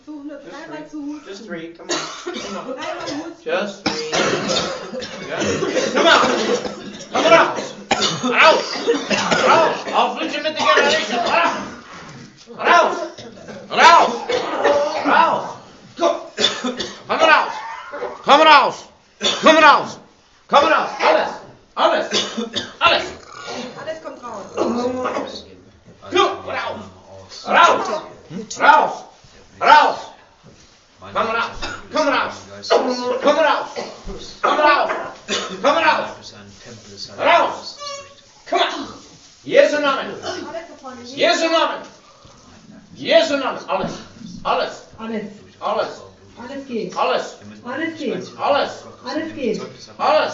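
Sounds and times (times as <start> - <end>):
speech: 0.3 - 11.7, 12.5 - 17.4, 18.2 - 25.5, 26.1 - 30.1, 31.0 - 37.8, 38.5 - 42.0, 43.0 - 50.3
person coughing: 1.9 - 11.8, 12.9 - 15.3, 16.4 - 17.1, 19.2 - 19.6, 22.0 - 25.4, 31.6 - 32.0, 33.8 - 35.8, 40.2 - 40.6
person clearing throat: 1.9 - 12.1, 12.9 - 15.4, 16.4 - 18.2, 19.2 - 19.6, 22.0 - 25.5, 31.6 - 32.0, 33.8 - 35.8, 40.2 - 40.6.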